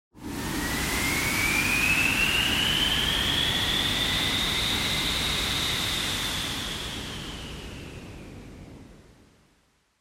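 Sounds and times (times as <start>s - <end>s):
synthetic wind: 0.2s - 9.7s.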